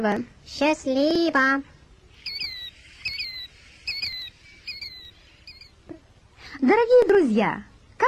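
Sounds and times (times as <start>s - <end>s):
speech: 0.0s - 1.7s, 6.6s - 8.0s
faint low hum: 0.0s - 8.0s
killdeer plover calling: 2.2s - 5.8s.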